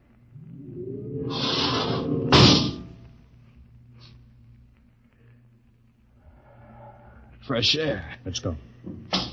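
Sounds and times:
spaceship outer airlock opening with a hissing whoosh: 0:00.5 - 0:02.9
speech: 0:07.5 - 0:09.2.

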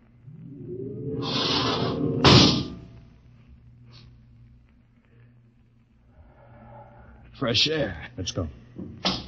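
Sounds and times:
outer airlock door opening with a hissing whoosh: 0:00.3 - 0:02.9
speech: 0:07.4 - 0:09.1.

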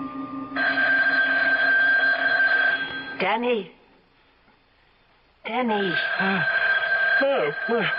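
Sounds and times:
telephone ringing with a steady high tone: 0:00.5 - 0:03.2, 0:05.8 - 0:07.9
speech: 0:03.2 - 0:03.8, 0:05.5 - 0:06.6, 0:07.2 - 0:07.9.

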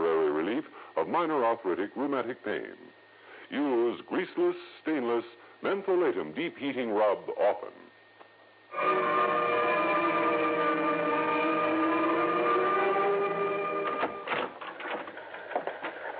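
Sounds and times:
speech: 0:00.6 - 0:07.8, 0:08.7 - 0:09.4
teletype machine printing with a mechanical whirring drone: 0:08.8 - 0:16.1.

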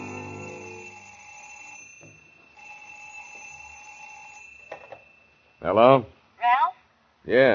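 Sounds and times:
old-fashioned telephone bell ringing in a deputy sheriff's home: 0:00.0 - 0:05.8
speech: 0:05.6 - 0:06.2, 0:07.2 - 0:07.5.

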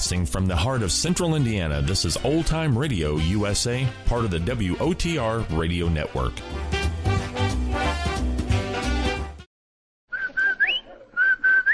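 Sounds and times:
band music: 0:00.0 - 0:09.5
speech: 0:00.1 - 0:06.8
advertising whistle tune: 0:10.1 - 0:11.7.

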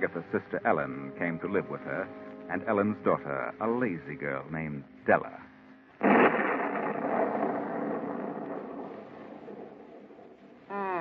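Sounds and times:
speech: 0:00.0 - 0:06.4
thunder from an approaching storm: 0:06.0 - 0:10.6.

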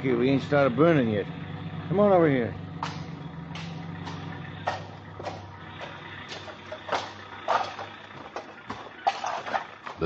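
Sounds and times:
speech: 0:00.0 - 0:02.9
truck engine rumble at a city dump: 0:00.0 - 0:10.0
debris clanking and thudding at a city dump: 0:02.8 - 0:10.0.

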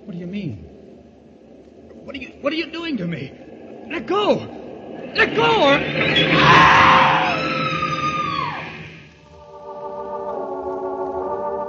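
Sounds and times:
train grinding to a stop at a platform: 0:00.8 - 0:11.6
speech: 0:02.1 - 0:04.6, 0:05.2 - 0:06.8
woman screaming at a train platform: 0:06.2 - 0:08.8.

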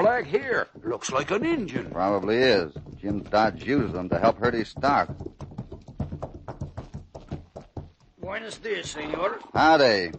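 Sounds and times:
horse hooves clip-clopping as a bareback rider approaches near a ranch: 0:00.0 - 0:10.1
speech: 0:00.2 - 0:05.4, 0:08.3 - 0:10.1.

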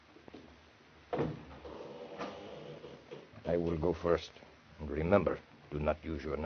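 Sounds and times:
patio door sliding open: 0:01.1 - 0:03.9
speech: 0:03.5 - 0:06.4.

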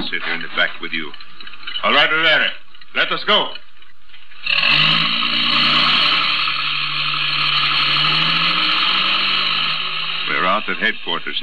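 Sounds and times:
speech: 0:00.0 - 0:03.6, 0:04.4 - 0:05.2, 0:10.5 - 0:11.4
grinding mechanical whine of truck: 0:00.0 - 0:11.4
truck engine driving off: 0:04.4 - 0:11.4.

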